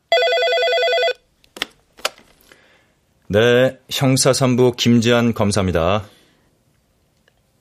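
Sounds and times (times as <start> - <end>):
telephone ringing with electronic trill: 0.1 - 1.2
speech: 3.3 - 6.2.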